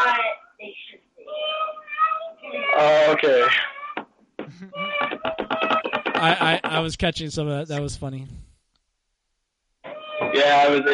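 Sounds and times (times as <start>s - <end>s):
child imitating cat meowing: 0.0s - 0.4s, 1.2s - 4.0s, 4.7s - 6.0s, 9.8s - 10.9s
speech: 2.8s - 3.7s, 6.2s - 8.4s, 10.4s - 10.9s.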